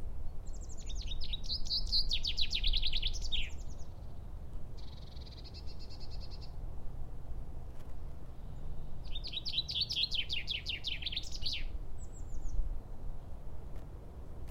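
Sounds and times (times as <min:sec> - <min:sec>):
common chaffinch song: 0:00.0 - 0:07.4, 0:08.1 - 0:13.6
faint bird chirps: 0:00.4 - 0:06.6, 0:08.3 - 0:13.1.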